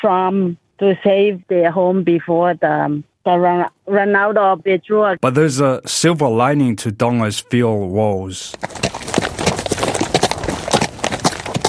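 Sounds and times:
speech: 0.0s - 8.9s
horse hooves clip-clopping as a family rides through streets: 8.5s - 11.6s.

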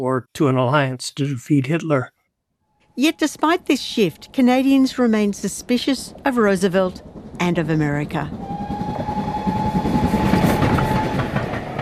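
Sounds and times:
speech: 0.0s - 2.2s, 3.0s - 8.7s
train moving on rails: 3.0s - 11.8s
mechanical whine of a train: 6.8s - 11.8s.

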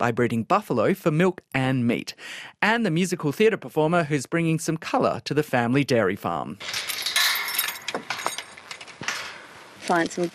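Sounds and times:
speech: 0.0s - 7.0s, 9.9s - 10.3s
dry paper daisy flowers rustling and crinkling while handled: 8.6s - 10.3s.

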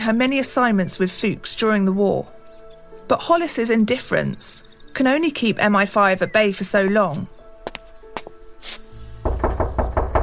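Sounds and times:
speech: 0.0s - 2.4s, 3.1s - 7.4s, 8.6s - 8.8s
knocking on a house door: 9.0s - 10.2s.

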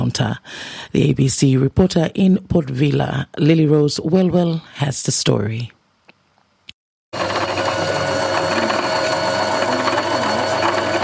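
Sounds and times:
speech: 0.0s - 5.8s
sewing machines running in a small room inside a two-story house: 7.2s - 11.0s.

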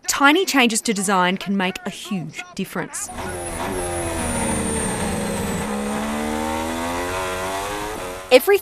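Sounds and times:
speech: 0.2s - 3.9s, 8.3s - 8.6s
pack of Formula One racing cars accelerating off the race start: 3.1s - 8.3s.

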